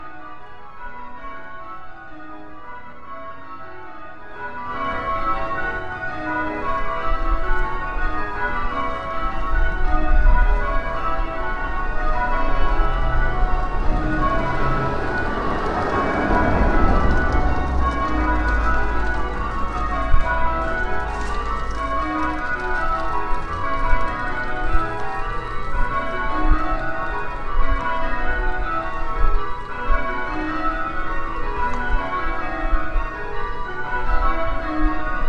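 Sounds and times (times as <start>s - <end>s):
old St Martin's bells ringing down: 0.0s - 35.2s.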